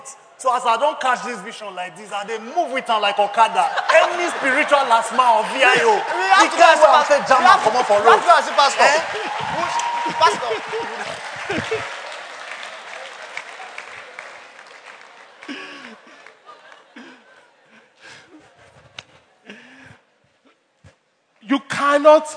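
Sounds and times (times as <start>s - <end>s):
speech: 0.1s - 12.0s, 22.0s - 22.3s
people chuckling: 3.5s - 12.2s, 13.6s - 20.0s
audience clapping and applauding: 3.8s - 19.2s.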